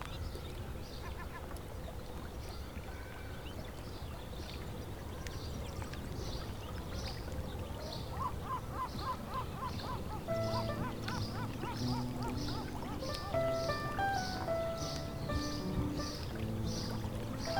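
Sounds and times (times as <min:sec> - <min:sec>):
low steady murmur of water: 0:00.2 - 0:17.5
birds calling at the water's edge at dusk: 0:08.1 - 0:17.5.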